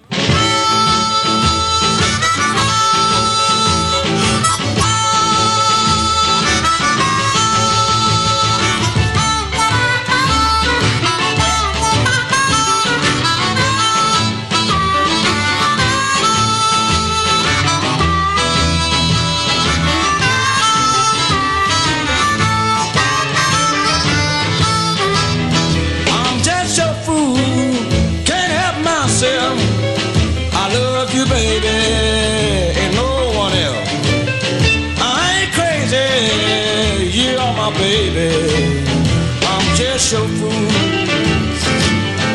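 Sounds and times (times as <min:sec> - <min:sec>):
distorted amplified blues harmonica: 0:00.0 - 0:42.3
full band backing: 0:00.0 - 0:42.3.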